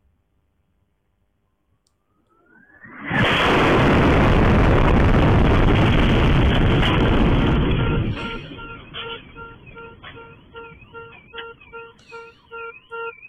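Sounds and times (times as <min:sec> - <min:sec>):
warbling alarm tones: 0:02.0 - 0:13.2
rising whoosh: 0:02.3 - 0:06.2
missile strike explosion: 0:02.5 - 0:09.8.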